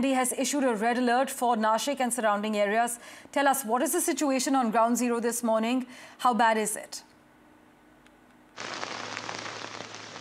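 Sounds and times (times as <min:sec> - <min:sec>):
speech: 0:00.0 - 0:07.1
heavy rain pattering on a nearby surface: 0:08.6 - 0:10.1.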